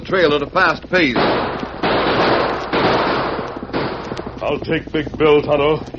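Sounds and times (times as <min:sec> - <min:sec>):
speech: 0:00.0 - 0:02.4, 0:04.4 - 0:05.9
gunfire in a western radio drama: 0:01.0 - 0:04.6.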